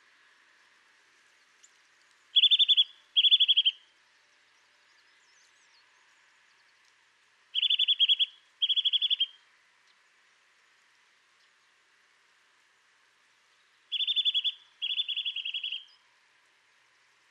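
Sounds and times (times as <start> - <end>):
Eurasian nuthatch Sitta europaea calling in rapid high rattling notes: 2.4 - 3.8, 7.5 - 9.4, 13.9 - 16.0.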